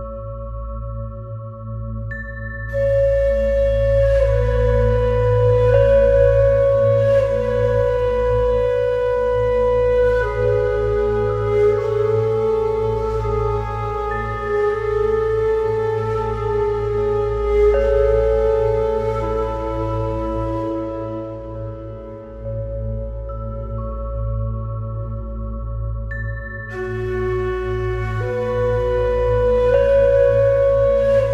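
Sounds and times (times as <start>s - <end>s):
flute playing: 2.0s - 31.3s.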